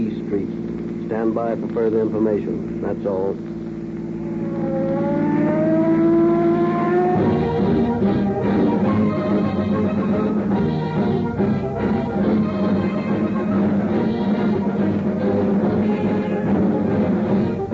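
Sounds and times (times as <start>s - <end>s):
speech: 0.0s - 3.5s
dense street traffic roaring past: 0.0s - 17.7s
car engines rising in pitch as cars accelerate: 3.9s - 17.7s.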